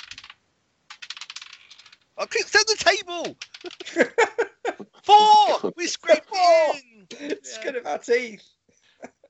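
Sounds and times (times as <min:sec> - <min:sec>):
dice rolled in a tabletop game clattering across a hard table: 0:00.0 - 0:02.1, 0:03.3 - 0:03.9
speech: 0:02.2 - 0:04.5, 0:05.1 - 0:08.5
laughter: 0:02.2 - 0:08.1.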